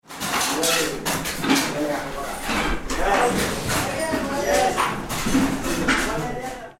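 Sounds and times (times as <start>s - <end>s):
can manufacturing: 0.1s - 6.7s.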